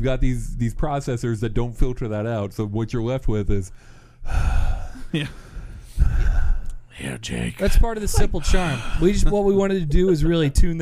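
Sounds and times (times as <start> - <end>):
speech: 0.0 - 5.4, 7.0 - 10.7
heavy labored breathing of someone out of breath: 3.7 - 6.9, 8.1 - 9.3.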